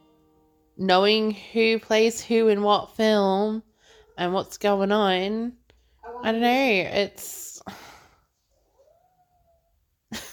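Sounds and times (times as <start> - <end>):
speech: 0.8 - 5.6, 6.2 - 7.8
domestic cat meowing: 8.7 - 9.8.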